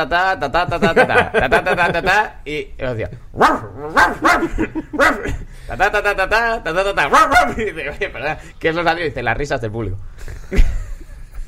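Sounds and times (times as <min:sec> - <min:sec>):
speech: 0:00.0 - 0:10.8
laughter: 0:00.6 - 0:02.4, 0:04.2 - 0:05.6, 0:07.2 - 0:08.4, 0:10.2 - 0:11.4
man imitating laughter as dog-like barks: 0:03.4 - 0:05.4, 0:07.0 - 0:07.7.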